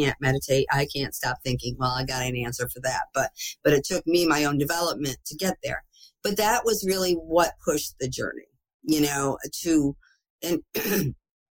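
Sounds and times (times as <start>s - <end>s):
speech: 0.0s - 11.2s
rough throat clearing: 10.7s - 11.2s
short harsh coughing bursts: 10.7s - 11.2s.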